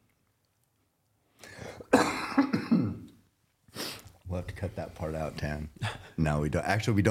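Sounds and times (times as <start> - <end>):
person with a lingering cough coughing: 1.6 - 3.2
speech: 4.6 - 7.0.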